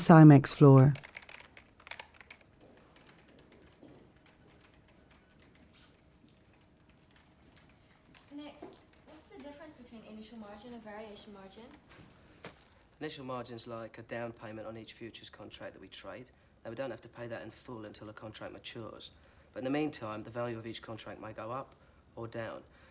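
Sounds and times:
speech: 0.0s - 1.0s, 13.0s - 22.8s
typing on a computer keyboard in a bank's back settlement office: 0.8s - 11.9s.

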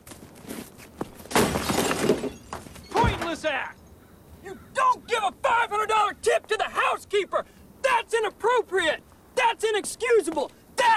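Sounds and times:
rock smashing the windscreen of a broken-down car: 1.3s - 3.4s
speech: 3.4s - 3.8s, 4.4s - 10.9s.

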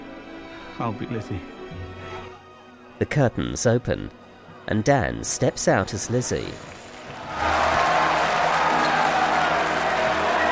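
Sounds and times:
speech: 0.8s - 1.6s, 3.0s - 6.8s
large crowd cheering and shouting: 6.9s - 10.4s.

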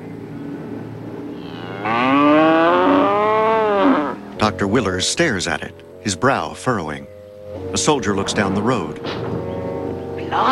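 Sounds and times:
cow mooing: 1.3s - 4.3s
speech: 4.4s - 9.3s.

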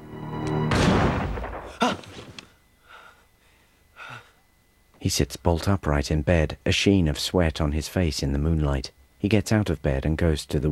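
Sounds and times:
rifle gunshot: 0.7s - 1.8s
faint breathy bursts: 2.5s - 4.5s
speech: 5.1s - 10.6s.

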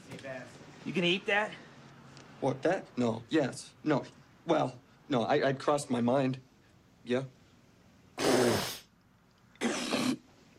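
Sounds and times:
speech: 0.3s - 1.6s, 2.4s - 7.4s
person hawking and spitting thick phlegm onto a burger: 8.2s - 8.9s, 9.5s - 10.3s.

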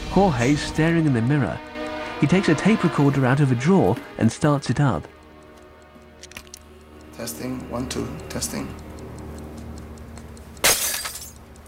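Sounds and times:
speech: 0.2s - 5.2s, 7.2s - 8.8s
bright tinkling glass shards: 10.6s - 11.4s
glass display case smashed on the floor: 10.6s - 11.4s.

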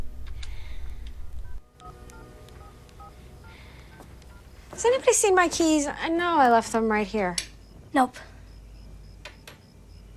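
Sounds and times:
faint steady hum: 0.0s - 10.1s
mobile phone number dialed on a keypad: 1.4s - 3.6s, 4.2s - 4.6s
speech: 4.8s - 8.3s.

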